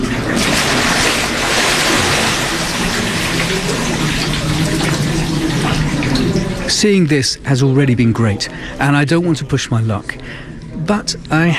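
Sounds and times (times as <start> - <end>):
water churning and splashing in a stone bath as a body is plunged in: 0.0 - 7.2
speech: 6.8 - 11.5.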